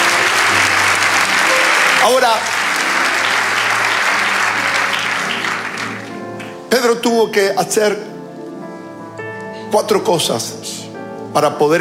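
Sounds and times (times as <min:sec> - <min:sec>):
large crowd applauding: 0:00.0 - 0:09.7
speech: 0:02.0 - 0:02.6, 0:06.8 - 0:08.1, 0:09.7 - 0:11.7.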